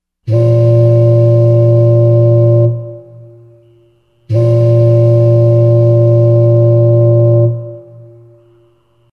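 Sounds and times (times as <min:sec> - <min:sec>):
ship horn: 0:00.3 - 0:09.1.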